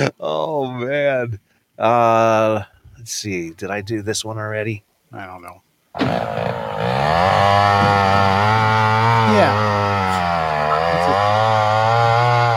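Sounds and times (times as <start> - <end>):
speech: 0.0 - 10.3
chainsaw engine running: 6.0 - 12.5.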